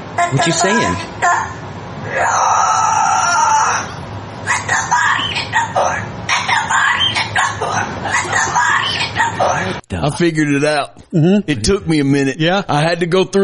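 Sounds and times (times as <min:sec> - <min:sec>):
speech: 0:00.3 - 0:02.6, 0:09.4 - 0:13.4
cockatoo long harsh screech: 0:01.2 - 0:09.4.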